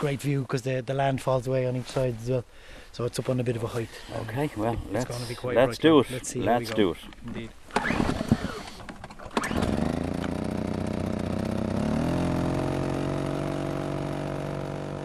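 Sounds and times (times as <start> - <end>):
speech: 0.0 - 8.2
portable generator powering traps running: 7.8 - 15.0.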